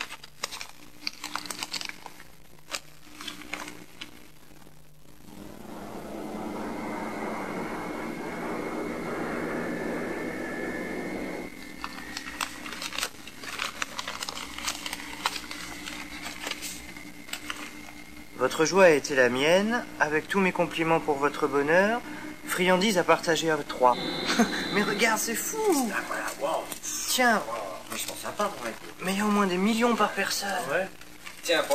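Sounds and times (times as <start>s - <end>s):
crinkling and clicking handling noises of a gift being opened: 0.0s - 4.7s, 11.6s - 18.0s
whooshing airplane cabin engine drone: 5.2s - 14.1s, 23.7s - 26.4s
speech: 18.6s - 27.6s, 28.4s - 31.7s.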